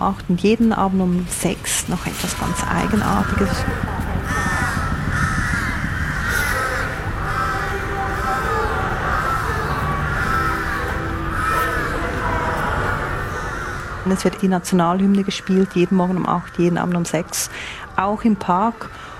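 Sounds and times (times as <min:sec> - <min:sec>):
speech: 0:00.0 - 0:04.1, 0:14.1 - 0:19.1
rumble: 0:00.0 - 0:16.6
crows cawing in a park: 0:02.1 - 0:14.4.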